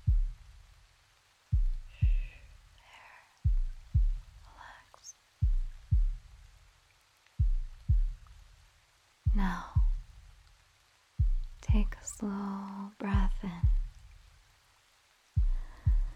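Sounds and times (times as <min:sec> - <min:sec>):
heartbeat heard through a chest: 0:00.0 - 0:00.7, 0:01.5 - 0:02.5, 0:03.4 - 0:04.7, 0:05.4 - 0:06.5, 0:07.4 - 0:08.4, 0:09.2 - 0:10.3, 0:11.2 - 0:12.2, 0:13.0 - 0:14.3, 0:15.4 - 0:16.1
speech: 0:11.8 - 0:12.7.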